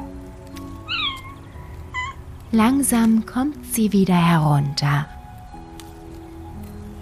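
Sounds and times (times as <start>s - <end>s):
white kitten meowing: 0.8s - 2.2s
speech: 2.5s - 5.2s.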